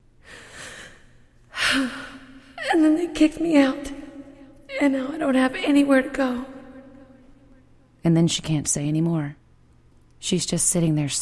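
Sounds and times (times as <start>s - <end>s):
woman taking a long shuddering gasp: 0.2s - 2.6s
speech: 1.8s - 2.0s, 2.7s - 4.0s, 4.8s - 6.6s, 8.0s - 9.4s, 10.2s - 11.2s.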